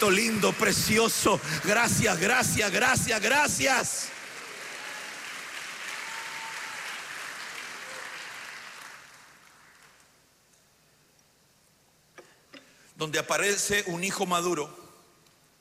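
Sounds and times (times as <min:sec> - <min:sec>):
speech: 0:00.0 - 0:04.2, 0:13.0 - 0:14.8
audience applause at a church service: 0:00.0 - 0:10.2.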